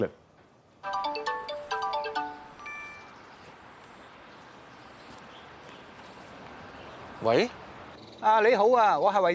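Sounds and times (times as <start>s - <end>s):
phone ringtone melody of quick electronic notes: 0.8s - 3.2s
speech: 7.2s - 7.6s, 8.2s - 9.3s.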